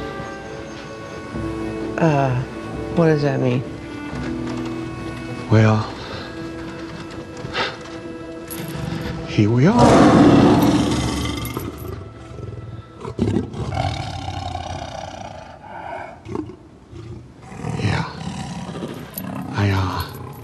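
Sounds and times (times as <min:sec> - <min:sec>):
speech: 0:02.0 - 0:04.4, 0:05.5 - 0:05.9, 0:09.4 - 0:10.7
tiger roaring: 0:09.8 - 0:19.6.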